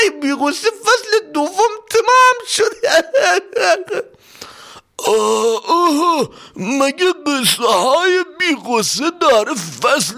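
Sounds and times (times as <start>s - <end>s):
man wailing and sobbing loudly: 0.0s - 4.2s, 5.0s - 10.1s
speech: 0.1s - 10.1s
short catching breaths: 4.1s - 5.0s, 6.3s - 6.6s.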